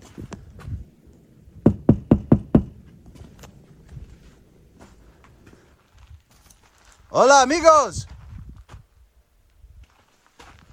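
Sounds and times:
firm knocking on a door: 1.6s - 2.8s
speech: 7.2s - 8.1s.

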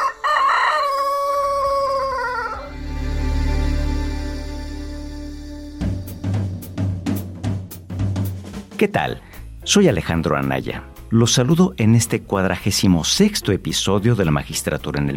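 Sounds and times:
rooster crowing: 0.0s - 3.1s
low rumbling: 1.6s - 8.6s
rhythmic percussive sounds: 5.6s - 9.6s
speech: 8.8s - 15.1s.

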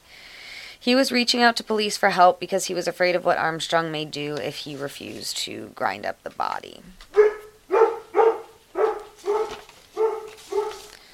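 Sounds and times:
speech: 0.8s - 7.1s
dog barking: 7.1s - 11.1s.

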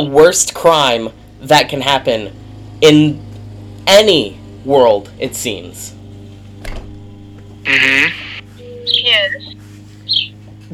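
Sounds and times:
speech: 0.0s - 3.3s, 3.9s - 6.0s, 7.6s - 8.2s
steady low hum: 0.0s - 10.7s
birds chirping in a backyard: 7.7s - 10.7s.

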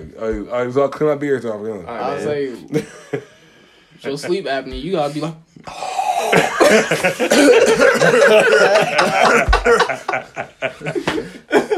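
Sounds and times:
speech: 0.0s - 3.3s, 4.0s - 6.0s, 6.7s - 11.4s
person coughing: 6.1s - 9.8s
snickering chuckling laughter: 6.3s - 11.7s.

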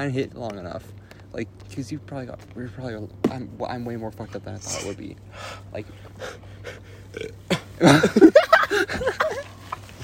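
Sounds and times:
speech: 0.0s - 9.5s
long loud croaky burp: 7.1s - 7.7s
laughter: 7.5s - 9.7s.

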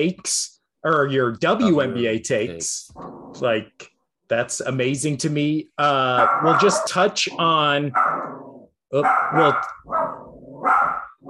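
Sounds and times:
speech: 0.0s - 10.1s
dog barking: 6.2s - 8.4s, 9.0s - 11.2s.

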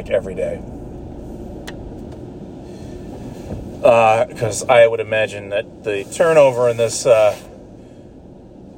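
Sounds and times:
speech: 0.0s - 0.8s, 3.8s - 7.5s
car wash machinery rumbling: 0.0s - 8.7s
car being sprayed in a car wash: 3.0s - 7.7s.

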